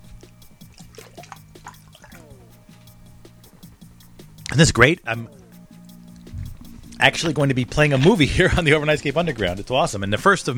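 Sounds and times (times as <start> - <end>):
steady low humming drone: 0.0 - 4.5, 5.3 - 8.1
water running and dripping: 0.0 - 9.8
speech: 4.5 - 5.4, 7.0 - 10.5.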